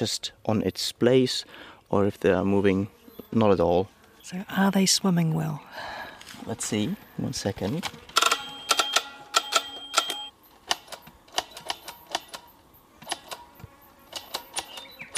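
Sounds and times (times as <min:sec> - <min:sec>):
speech: 0:00.0 - 0:08.1
manual tally counter clicking while counting sperm cells under a microscope: 0:08.2 - 0:12.5.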